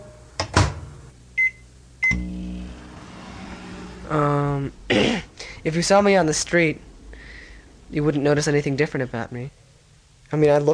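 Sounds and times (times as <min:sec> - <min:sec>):
microwave oven running with buzzing electrical hum: 0:00.0 - 0:04.7
short beeps: 0:01.4 - 0:02.5
speech: 0:04.1 - 0:06.9, 0:07.9 - 0:09.6, 0:10.3 - 0:10.7.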